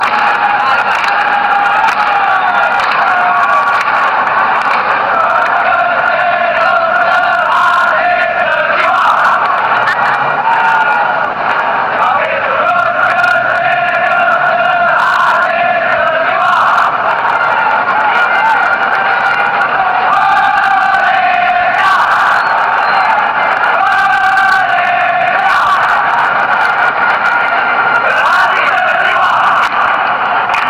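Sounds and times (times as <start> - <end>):
football ultras chanting an anthem: 0.0 - 30.6.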